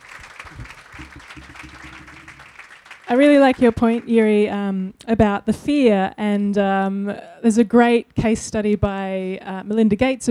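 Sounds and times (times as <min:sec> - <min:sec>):
audience clapping: 0:00.0 - 0:04.3
speech: 0:03.1 - 0:10.2.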